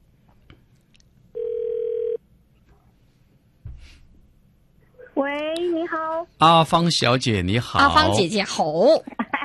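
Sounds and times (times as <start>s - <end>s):
faint hum: 0.0s - 9.4s
telephone ringback tone as a phone call connects: 1.4s - 2.2s
speech: 5.2s - 9.2s.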